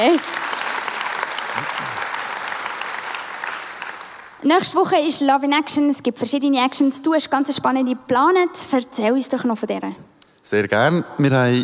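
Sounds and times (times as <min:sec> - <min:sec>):
speech: 0:00.0 - 0:00.4, 0:04.4 - 0:11.6
audience applause: 0:00.0 - 0:04.4.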